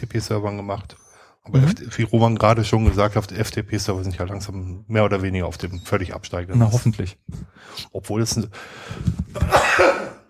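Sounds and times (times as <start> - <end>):
speech: 0.0 - 10.1
sneeze: 9.4 - 10.2.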